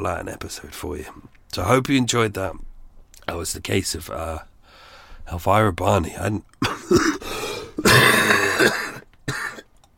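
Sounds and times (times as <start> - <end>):
speech: 0.0 - 2.7, 3.3 - 4.5, 5.3 - 7.2
person coughing: 6.6 - 9.7.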